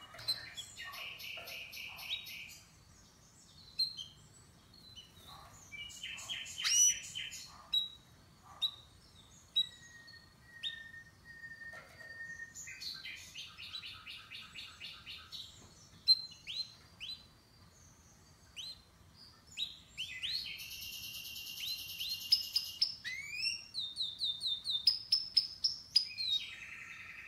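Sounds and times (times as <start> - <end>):
canary singing: 0.0 - 2.7, 3.5 - 4.2, 4.8 - 17.4, 18.1 - 27.2
steady low hiss: 0.0 - 27.2.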